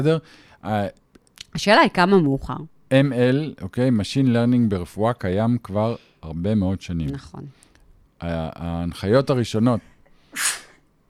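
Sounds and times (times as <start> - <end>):
speech: 0.0 - 1.0, 1.6 - 11.0
breathy sniff: 10.1 - 10.8
person sneezing: 10.3 - 11.0.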